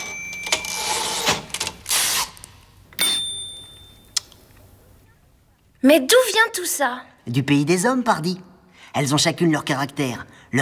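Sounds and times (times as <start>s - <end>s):
typewriter bright bell-like rings: 0.0s - 1.3s, 3.0s - 4.2s
speech: 5.8s - 10.5s.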